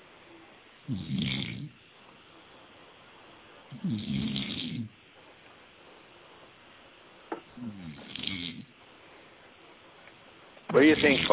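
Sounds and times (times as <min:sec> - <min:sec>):
quiet hiss: 0:00.0 - 0:11.3
man snoring with slow rumbling bursts: 0:00.9 - 0:01.8, 0:03.7 - 0:05.0, 0:07.6 - 0:08.7, 0:10.8 - 0:11.3
speech: 0:00.9 - 0:01.8, 0:03.8 - 0:04.6, 0:10.8 - 0:11.3.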